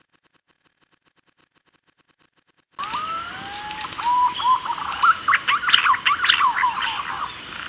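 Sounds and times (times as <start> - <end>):
green pigeon song used as a lure call for trapping: 2.8 - 7.4.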